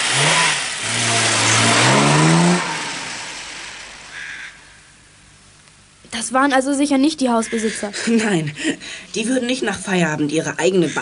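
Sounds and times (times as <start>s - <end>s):
car engine revving and pulling away up a slope: 0.0s - 4.9s
speech: 6.3s - 10.9s.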